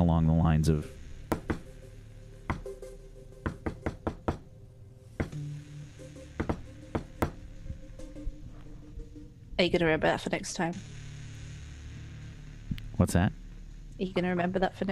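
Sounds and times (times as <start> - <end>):
low room hum: 0.0 - 14.9
speech: 0.2 - 1.4, 9.6 - 11.0, 13.0 - 13.3, 14.0 - 14.9
rhythmic knocking on a door: 1.3 - 1.6, 3.4 - 4.4, 6.4 - 7.4.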